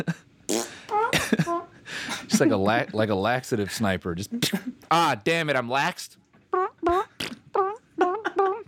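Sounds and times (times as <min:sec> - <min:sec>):
speech: 0:00.0 - 0:00.3, 0:02.4 - 0:06.2
voice imitating fart sounds: 0:00.5 - 0:01.1, 0:06.5 - 0:08.6.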